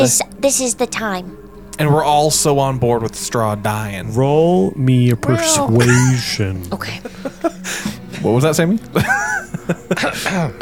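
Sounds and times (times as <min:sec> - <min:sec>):
speech: 0:00.0 - 0:10.6
laughter: 0:05.2 - 0:10.6
person coughing: 0:05.8 - 0:07.9, 0:09.9 - 0:10.6.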